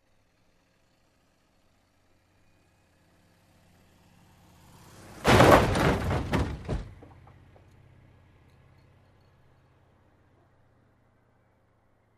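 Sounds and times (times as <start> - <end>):
approaching car crash: 5.0 - 7.4.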